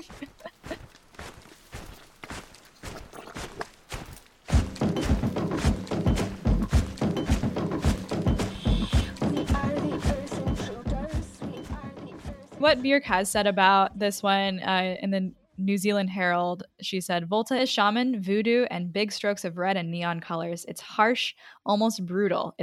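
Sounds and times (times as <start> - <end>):
speech: 0.0 - 0.4, 12.6 - 22.6
rhythmic stomping footsteps with a wet squishy thud: 0.0 - 13.4
dense music in a song intro: 4.5 - 13.6.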